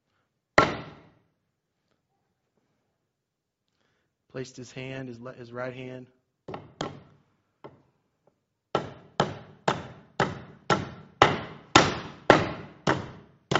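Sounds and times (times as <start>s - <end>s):
hammer driving a nail: 0.6s - 1.2s, 6.5s - 7.8s, 8.7s - 13.5s
speech: 4.3s - 6.2s.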